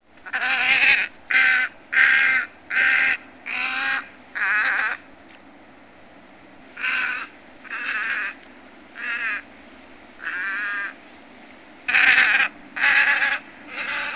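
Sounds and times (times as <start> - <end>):
tricolored heron harsh rasping squawks: 0.2 - 5.0, 6.8 - 8.4, 9.0 - 9.4, 10.2 - 11.0, 11.9 - 14.1.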